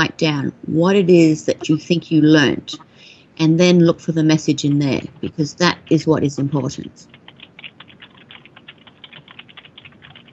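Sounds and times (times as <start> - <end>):
speech: 0.0 - 7.2
soft hum: 0.0 - 10.3
fast keyboard typing: 4.8 - 10.3.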